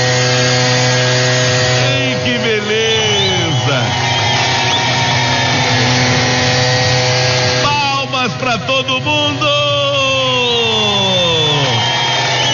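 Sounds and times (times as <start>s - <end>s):
leaf blower roaring: 0.0s - 12.5s.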